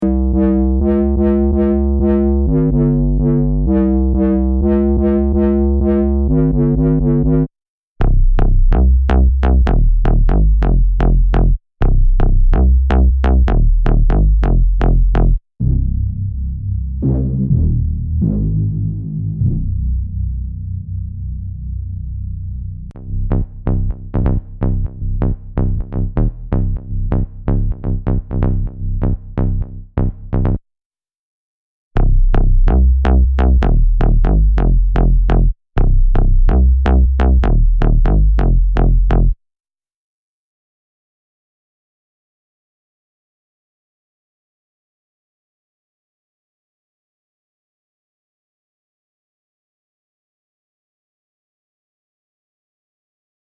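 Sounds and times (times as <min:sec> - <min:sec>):
bassline loops: 0:00.0 - 0:30.6, 0:32.0 - 0:39.4.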